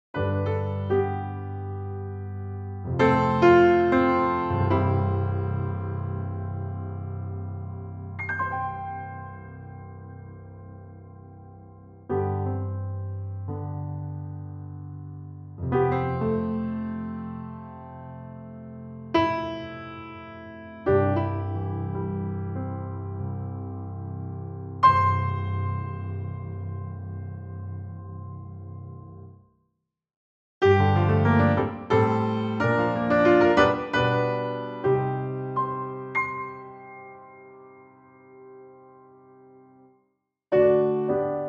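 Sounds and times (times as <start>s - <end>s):
Steinway B grand piano: 0.1s - 29.4s, 30.6s - 41.4s.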